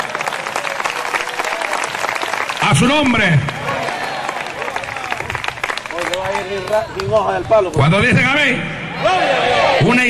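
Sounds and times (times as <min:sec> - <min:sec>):
audience applauding: 0:00.0 - 0:07.4
speech: 0:02.6 - 0:03.5, 0:06.0 - 0:10.0.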